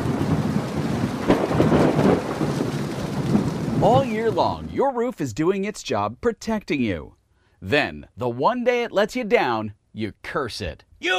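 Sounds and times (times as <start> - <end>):
deep loud rumble of thunder: 0.0 - 4.8
heavy rain pouring: 0.0 - 4.8
speech: 3.8 - 11.1.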